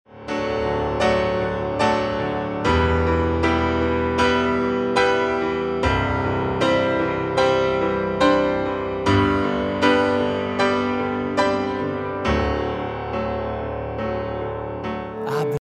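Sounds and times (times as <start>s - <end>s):
piano snippet: 0.1s - 15.6s.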